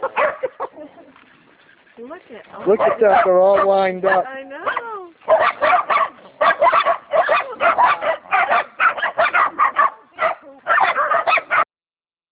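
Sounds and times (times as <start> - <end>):
Corgi barking in sharp harsh yaps: 0.0 - 0.7, 2.7 - 11.7
speech: 2.1 - 4.5.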